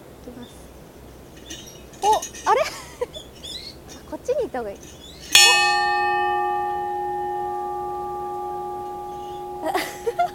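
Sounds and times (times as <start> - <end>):
speech: 2.4 - 2.8, 4.5 - 5.1
lovers' bell at an outdoor lookout ringing: 5.3 - 10.3.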